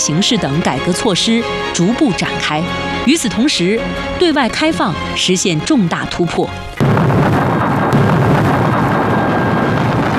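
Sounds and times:
speech: 0:00.0 - 0:07.4
debris-like crackle: 0:06.8 - 0:10.1
mountain-clearing blasting explosion at the Shekou Industrial Zone: 0:06.8 - 0:10.1.

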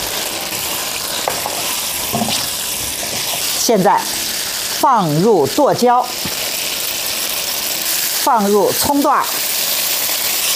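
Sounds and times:
stir-frying in a hot pan with light soy sauce, oyster sauce, sugar: 0:00.0 - 0:10.5
soft scraping stirs in a hot pan: 0:01.2 - 0:03.6
speech: 0:03.7 - 0:06.2, 0:08.3 - 0:09.4.

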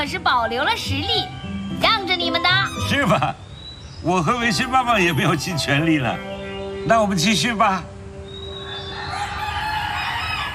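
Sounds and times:
speech: 0:00.0 - 0:07.9
rooster-like crow: 0:08.4 - 0:10.5
flock of hens clucking and squawking: 0:08.5 - 0:10.5.

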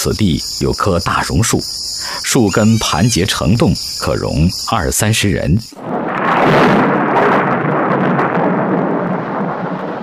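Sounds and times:
speech: 0:00.0 - 0:05.9
deep thunder rumbling: 0:05.8 - 0:10.0
heavy rain: 0:05.8 - 0:10.0.

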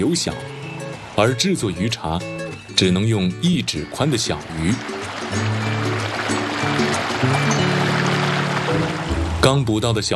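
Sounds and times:
speech: 0:00.0 - 0:00.6, 0:01.2 - 0:05.8, 0:09.4 - 0:10.1
flowing river water rushing: 0:00.0 - 0:09.5
low sustained musical tones: 0:03.0 - 0:09.5.

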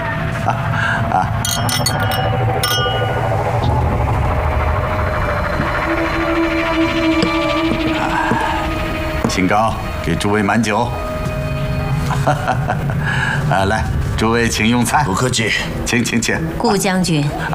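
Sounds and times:
indistinct voices: 0:00.0 - 0:17.5
steady low rumbling background: 0:00.1 - 0:16.9
laughter: 0:00.3 - 0:01.6, 0:12.0 - 0:13.6
speech: 0:00.5 - 0:00.7, 0:01.6 - 0:03.2, 0:09.4 - 0:11.1, 0:12.2 - 0:17.5
glasses clinking in a toast: 0:01.4 - 0:03.7.

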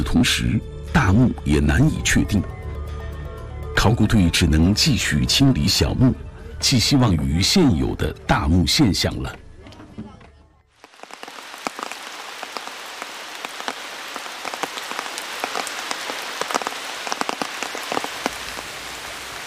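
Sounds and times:
speech: 0:00.1 - 0:02.6, 0:03.8 - 0:09.4
sharper drips: 0:10.8 - 0:19.4
steady rain pattering at an excavation site: 0:10.8 - 0:19.4.

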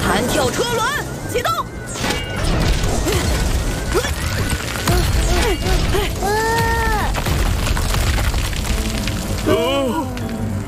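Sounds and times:
speech: 0:00.2 - 0:01.7
rumble of crashing rock from a collapsing lava tube: 0:02.6 - 0:10.6.

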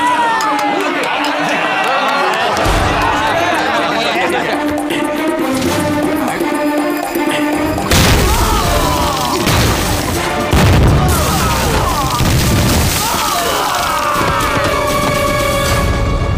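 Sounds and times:
laughter: 0:00.4 - 0:09.7, 0:13.0 - 0:15.4
churning rumble: 0:05.4 - 0:16.2
landmine explosions during an armed assault on an ancestral hall: 0:07.7 - 0:15.9.

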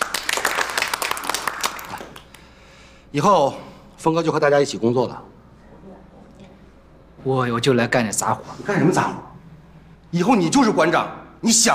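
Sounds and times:
small crowd applauding: 0:00.0 - 0:02.5
speech: 0:03.1 - 0:05.3, 0:07.2 - 0:09.3, 0:10.1 - 0:11.7.

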